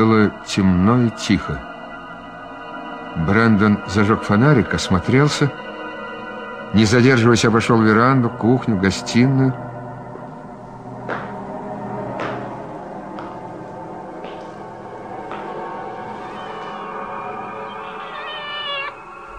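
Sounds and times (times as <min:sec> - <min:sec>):
speech: 0:00.0 - 0:01.7, 0:03.2 - 0:05.7, 0:06.7 - 0:09.7
cat shut in somewhere meowing: 0:17.6 - 0:19.1.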